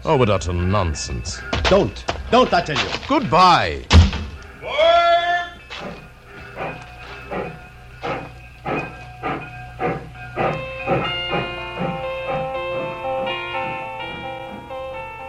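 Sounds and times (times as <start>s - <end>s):
speech: 0.0s - 4.0s
ringing whistle-like tone: 4.4s - 15.2s
steam train chuffing pulling away from station: 5.3s - 15.2s.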